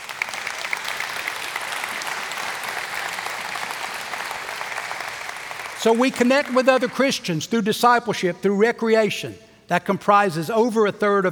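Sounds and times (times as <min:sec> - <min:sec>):
crowd applauding: 0:00.0 - 0:07.2
speech: 0:05.8 - 0:11.3.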